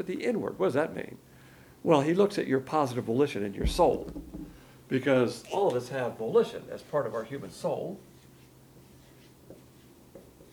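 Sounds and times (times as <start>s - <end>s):
speech: 0.0s - 8.1s
marker strokes on a board drawing a car battery: 8.1s - 10.5s.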